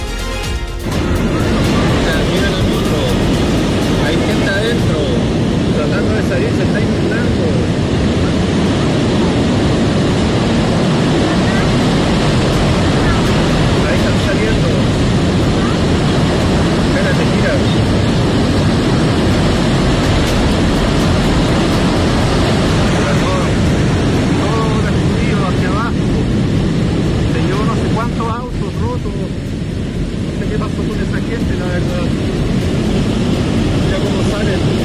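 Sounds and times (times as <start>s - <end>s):
torrent of floodwater rushing down a street: 0.8s - 34.8s.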